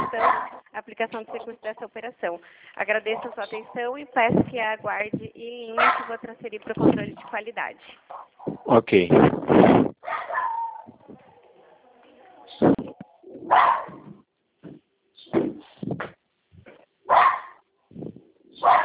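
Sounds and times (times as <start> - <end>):
female dog barking loudly: 0.0 - 0.7, 5.8 - 6.2, 10.0 - 10.9, 13.4 - 14.1, 17.1 - 17.6, 18.6 - 18.8
speech: 0.1 - 10.3.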